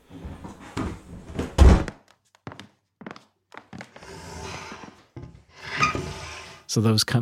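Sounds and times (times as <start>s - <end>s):
creaky squeak of wooden trunk: 3.1s - 6.7s
heavy wooden trunk dragged and scraping: 3.7s - 6.7s
speech: 6.8s - 7.2s.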